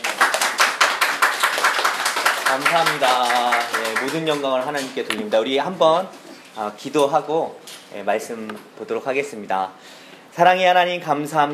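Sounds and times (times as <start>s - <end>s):
church service audience applauding to welcome a missionary speaker: 0.0s - 4.9s
speech: 2.5s - 11.5s.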